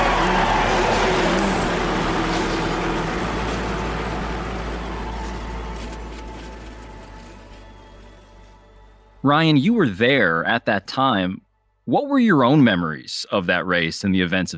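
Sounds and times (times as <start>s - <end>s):
many race car engines starting up and revving: 0.0s - 8.4s
speech: 9.2s - 14.5s.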